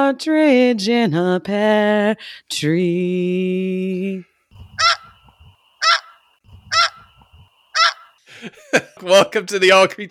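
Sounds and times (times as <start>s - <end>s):
speech: 0.0s - 5.0s, 8.4s - 10.0s
snow geese honking: 4.6s - 8.2s
laughter: 8.3s - 9.4s.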